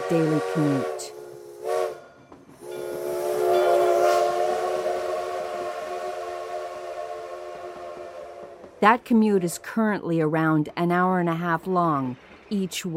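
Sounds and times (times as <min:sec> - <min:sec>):
train horn: 0:00.0 - 0:08.8
rumble and hiss of passing train: 0:00.0 - 0:12.9
speech: 0:00.1 - 0:01.2, 0:08.8 - 0:12.9.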